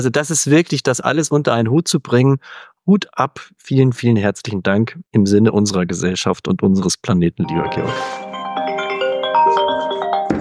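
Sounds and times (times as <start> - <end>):
speech: 0.0 - 8.2
mobile phone ringing with a melodic electronic tune: 7.4 - 10.3.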